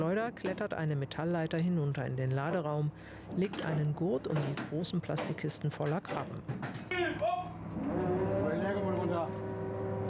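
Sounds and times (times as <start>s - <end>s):
speech: 0.0s - 8.1s
electric winch whining as it hoists crates: 7.4s - 10.0s.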